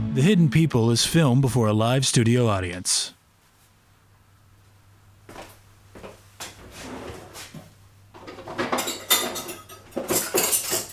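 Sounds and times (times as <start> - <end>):
speech: 0.2 - 3.2
forks spoons knives and plates clinking as they are set out: 8.2 - 10.9.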